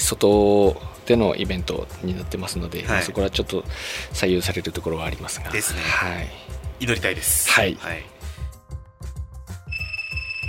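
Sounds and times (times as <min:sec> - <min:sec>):
speech: 0:00.1 - 0:08.2
telephone ringing: 0:09.7 - 0:10.4.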